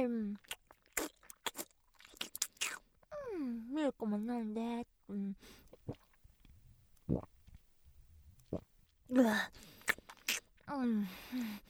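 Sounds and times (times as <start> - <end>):
person chewing egg noisily: 0.4 - 3.1, 5.6 - 9.0, 9.6 - 10.7
speech: 4.0 - 6.0, 7.1 - 7.3, 8.5 - 9.7, 10.7 - 11.6.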